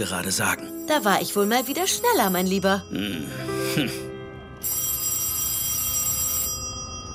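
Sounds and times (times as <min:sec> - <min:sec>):
speech: 0:00.0 - 0:04.8
old-style telephone bell ringing: 0:00.7 - 0:02.9, 0:04.6 - 0:07.1.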